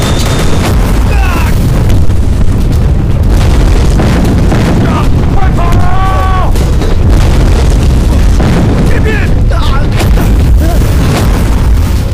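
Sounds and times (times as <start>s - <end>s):
booming explosions: 0.0s - 12.1s
heavy gunfire: 0.0s - 12.1s
people shouting: 1.1s - 1.6s, 4.8s - 6.6s.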